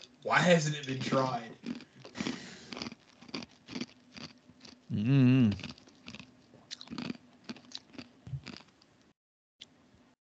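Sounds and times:
speech: 0.2s - 2.3s, 4.9s - 5.7s
ice crunching being chewed: 1.0s - 8.9s.

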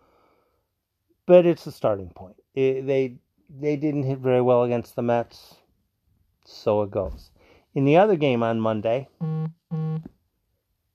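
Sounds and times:
speech: 1.3s - 5.6s, 6.4s - 10.2s
single electronic beep from a phone: 9.2s - 10.0s.

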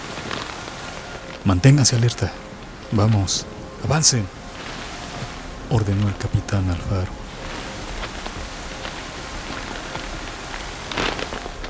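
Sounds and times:
heavy rain pouring at night: 0.0s - 11.6s
speech: 1.4s - 4.4s, 5.7s - 7.2s.

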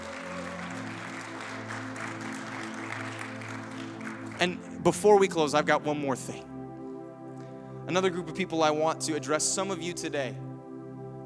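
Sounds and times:
audience clapping: 0.0s - 5.3s
speech: 4.4s - 6.5s, 7.9s - 10.4s.

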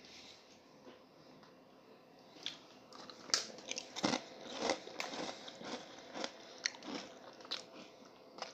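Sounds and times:
crunchy biting and chewing on food dipped in homemade sauce: 2.9s - 8.5s.

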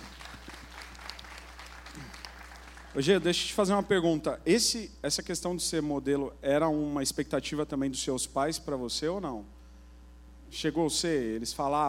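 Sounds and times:
crowd applauding after a testimony: 0.0s - 3.3s
speech: 3.0s - 9.6s, 10.5s - 11.8s.

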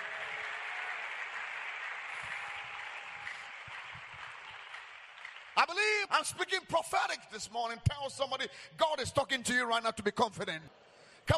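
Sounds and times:
audience clapping: 0.0s - 6.2s
speech: 5.6s - 11.3s.

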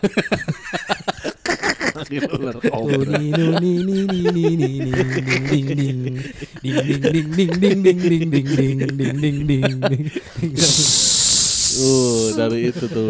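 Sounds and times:
speech: 0.0s - 1.1s, 2.1s - 13.0s
laughter: 0.0s - 13.0s
person imitating a cobra hiss: 10.6s - 12.5s.

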